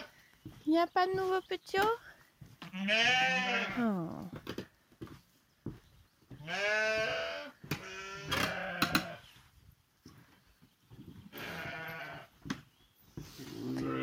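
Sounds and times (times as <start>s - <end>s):
shuffling and thumping of hooves: 0.0s - 14.0s
speech: 0.7s - 2.0s, 2.8s - 4.3s, 6.5s - 7.6s
ewes bleating in a barn: 2.6s - 4.0s, 6.4s - 9.4s, 11.3s - 12.3s, 13.4s - 14.0s.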